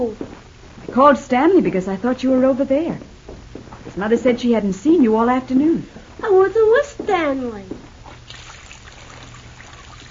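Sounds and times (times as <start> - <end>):
speech: 1.0 - 3.1, 4.0 - 7.8
water running into a basin for washing a child's face: 8.1 - 10.0.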